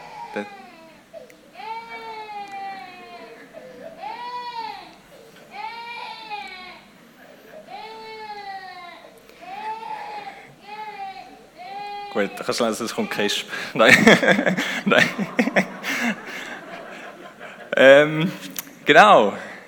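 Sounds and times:
small baby boy crying from hunger in the early morning: 0:00.0 - 0:06.9, 0:07.5 - 0:14.0
speech: 0:00.4 - 0:00.6, 0:12.2 - 0:15.7, 0:17.8 - 0:19.5
laughter: 0:13.2 - 0:18.5.

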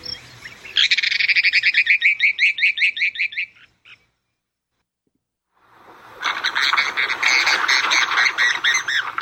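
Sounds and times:
mountain plover harsh calls: 0:00.0 - 0:04.1, 0:06.1 - 0:09.2.

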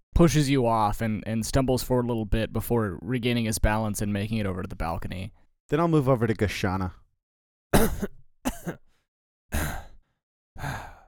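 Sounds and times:
speech: 0:00.2 - 0:07.0, 0:07.7 - 0:08.8
raspy coughs: 0:07.8 - 0:10.0.

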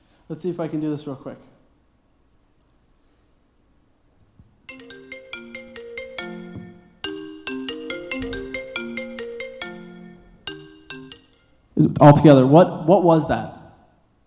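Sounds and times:
speech: 0:00.3 - 0:01.5, 0:12.0 - 0:13.6
phone ringtone: 0:04.7 - 0:11.7.

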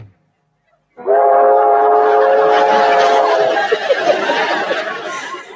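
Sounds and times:
train whistle call blown on a horn: 0:01.0 - 0:03.4
laughter: 0:01.8 - 0:05.5.

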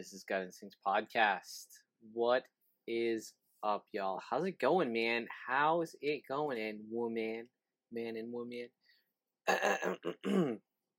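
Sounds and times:
speech: 0:00.0 - 0:08.8, 0:09.5 - 0:10.7
throat clearing: 0:09.5 - 0:10.7.

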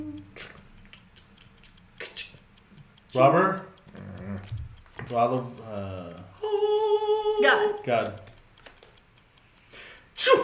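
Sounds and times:
light regular ticks: 0:00.0 - 0:10.4
speech: 0:03.1 - 0:03.7, 0:05.1 - 0:06.3, 0:07.4 - 0:08.3
person imitating a loud sneeze with a sharp hissing burst: 0:10.2 - 0:10.4.

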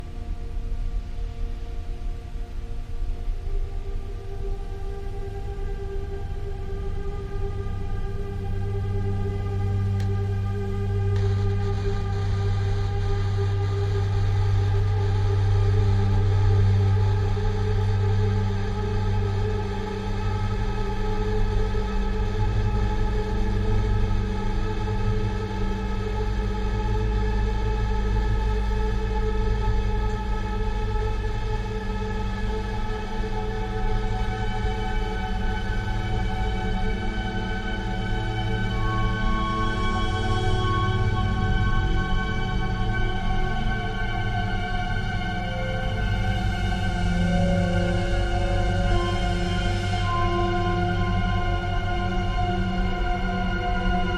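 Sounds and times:
soundscape: 0:00.0 - 0:54.1.

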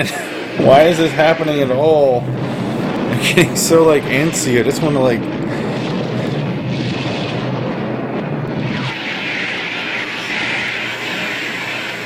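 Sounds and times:
speech: 0:00.0 - 0:05.8
missile effect in a war film with rushing roar and booming blast: 0:00.0 - 0:12.0
laughter: 0:03.1 - 0:03.6.

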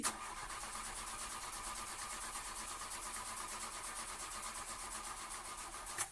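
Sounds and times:
car engine with new petroleum fuel cranking without catching: 0:00.0 - 0:06.1.

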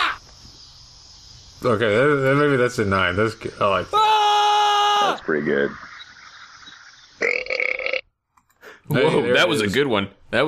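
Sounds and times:
speech: 0:01.6 - 0:04.3, 0:05.1 - 0:05.9, 0:08.9 - 0:10.4
loud drawn-out resonant burp: 0:07.2 - 0:08.1.

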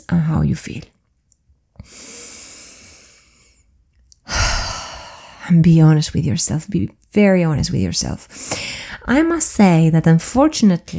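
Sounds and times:
speech: 0:00.0 - 0:01.0, 0:05.5 - 0:10.9
person breathing in and out: 0:01.8 - 0:05.5, 0:08.3 - 0:09.1.

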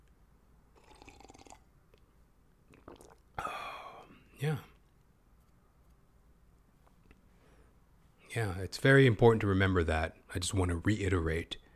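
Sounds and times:
slurp of water: 0:02.7 - 0:03.3
gulp of water being swallowed: 0:02.7 - 0:04.2
sips of water: 0:02.7 - 0:04.2
speech: 0:04.4 - 0:04.7, 0:08.4 - 0:11.6.

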